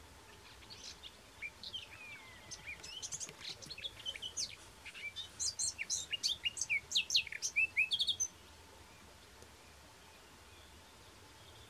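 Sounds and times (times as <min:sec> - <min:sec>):
Eurasian blackcap Sylvia atricapilla song: 0:00.0 - 0:08.4
light background noise: 0:00.0 - 0:11.6.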